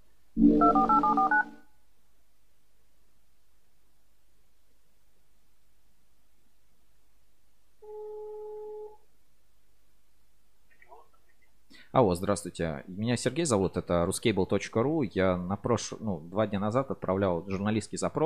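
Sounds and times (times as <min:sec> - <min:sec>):
steady clear dial tone: 0:00.4 - 0:01.6, 0:07.8 - 0:09.0
telephone dialing tones: 0:00.6 - 0:01.6
speech: 0:11.9 - 0:18.2.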